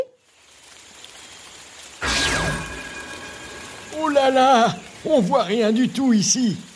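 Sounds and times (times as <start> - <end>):
heavy rain in a tropical rainforest: 0.0 - 6.7
speech: 4.0 - 6.7.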